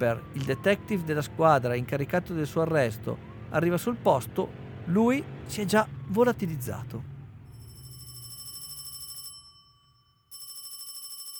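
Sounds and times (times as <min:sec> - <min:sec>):
speech: 0:00.0 - 0:07.1
telephone ringing with a trilling bell: 0:07.5 - 0:11.3.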